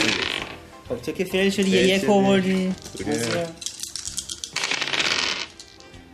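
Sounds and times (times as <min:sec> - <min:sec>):
speech: 0:00.9 - 0:03.6
dice clattering across a hard tabletop: 0:02.8 - 0:05.9.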